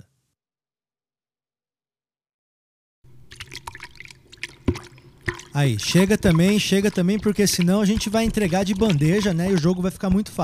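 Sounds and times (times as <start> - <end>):
dog lapping water from plastic tub: 3.1 - 9.9
speech: 5.6 - 10.4.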